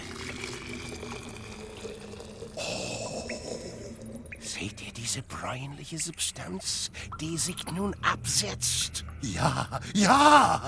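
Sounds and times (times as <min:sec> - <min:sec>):
liquid poured and stirred in a copper cup: 0:00.0 - 0:04.6
speech: 0:04.6 - 0:10.6.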